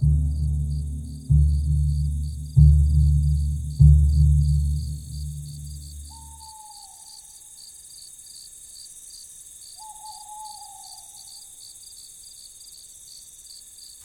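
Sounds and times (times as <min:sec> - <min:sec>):
owl hooting: 0:00.0 - 0:07.4, 0:09.8 - 0:11.3
chorus of crickets at night: 0:00.0 - 0:14.0.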